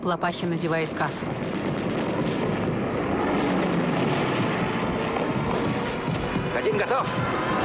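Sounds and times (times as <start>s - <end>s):
speech: 0.0s - 2.4s, 6.6s - 7.6s
warplane engines droning overhead: 0.0s - 7.6s
heavy explosion blasts: 1.1s - 7.6s
rapid gunfire: 1.4s - 7.6s.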